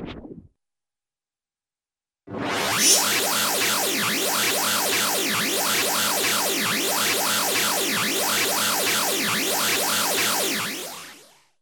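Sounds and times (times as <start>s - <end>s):
cartoon spaceship swooshes: 2.3s - 11.3s.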